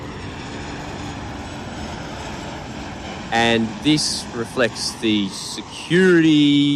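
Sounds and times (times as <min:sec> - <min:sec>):
airplane landing, touching down: 0:00.0 - 0:06.7
speech: 0:03.3 - 0:06.7.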